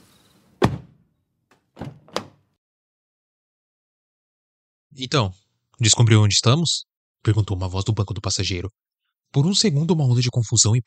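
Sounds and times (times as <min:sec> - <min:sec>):
car driver door shutting with a solid thunk: 0:00.6 - 0:01.0
soft thuds: 0:00.6 - 0:01.0
speech: 0:05.0 - 0:10.8.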